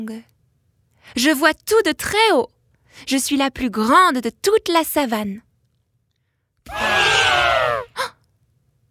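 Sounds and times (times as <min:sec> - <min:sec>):
speech: 0:01.1 - 0:05.5, 0:06.7 - 0:08.1
elephant trumpeting: 0:06.7 - 0:08.0.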